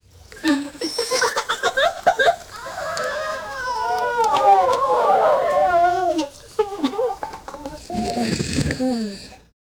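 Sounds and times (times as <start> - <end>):
laughter: 0.4 - 7.8
family softly gasping together: 2.1 - 9.5.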